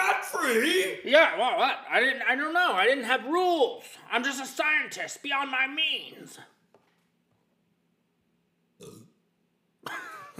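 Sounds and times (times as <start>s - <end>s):
speech: 0.5s - 6.6s
person burping: 8.8s - 9.2s.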